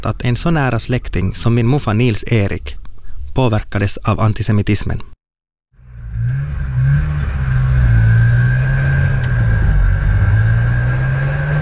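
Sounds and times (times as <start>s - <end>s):
speech: 0.0s - 2.8s, 3.4s - 5.1s
motorcycle with sidecar engine revving: 5.8s - 11.6s.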